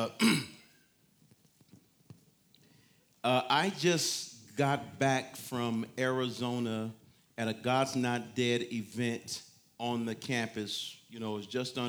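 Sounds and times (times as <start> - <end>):
speech: 0.0 - 0.5, 3.2 - 11.8
person coughing harshly: 0.0 - 0.7
throat clearing: 0.0 - 0.7.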